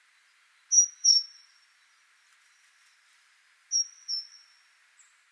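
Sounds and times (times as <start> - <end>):
great tit Parus major calls: 0.2 - 2.7, 3.7 - 5.2.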